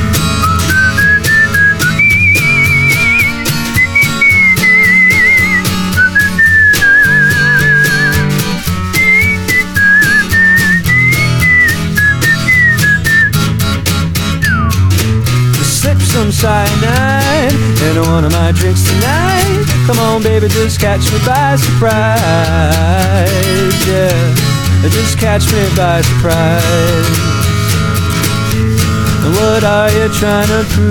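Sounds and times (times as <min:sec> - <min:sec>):
band backing of drums, bass and chords: 0:00.0 - 0:30.8
bright whistled melody with vibrato: 0:00.3 - 0:13.5, 0:14.3 - 0:15.2
speech: 0:19.9 - 0:27.4, 0:29.3 - 0:30.8.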